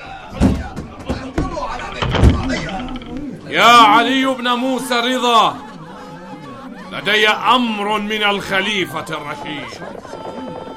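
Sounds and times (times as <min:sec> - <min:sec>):
agitated shouting voices of horsemen storming a house: 0:00.0 - 0:10.7
wooden door being smashed open with heavy blows: 0:00.3 - 0:03.1
speech: 0:02.8 - 0:05.7, 0:06.9 - 0:10.2
laughter: 0:03.3 - 0:10.7.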